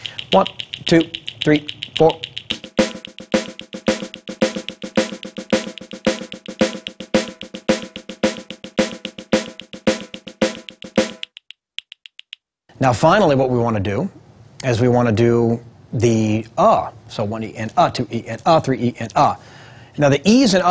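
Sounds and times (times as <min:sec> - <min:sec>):
drum exercise on a snare as a Nashville-style train beat: 0:00.0 - 0:12.4
speech: 0:00.3 - 0:02.3, 0:12.8 - 0:20.6.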